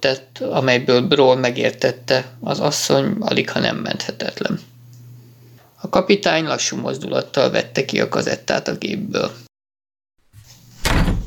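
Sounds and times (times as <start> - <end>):
speech: 0.0 - 4.7, 5.8 - 9.4
door creaking and rumbling: 10.4 - 11.2.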